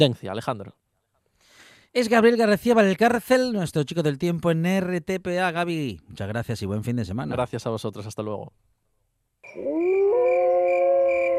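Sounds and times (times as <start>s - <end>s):
speech: 0.0s - 0.8s, 1.9s - 8.8s, 9.5s - 10.4s
wolf howling: 9.5s - 11.3s.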